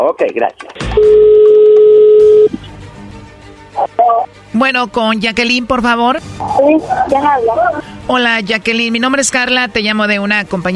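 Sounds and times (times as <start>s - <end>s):
speech: 0.0s - 1.3s, 3.8s - 10.7s
telephone dial tone: 1.0s - 2.6s.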